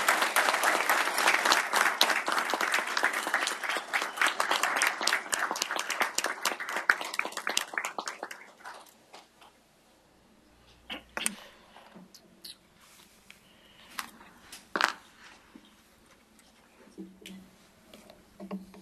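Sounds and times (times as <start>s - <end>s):
room full of people applauding: 0.0s - 9.0s.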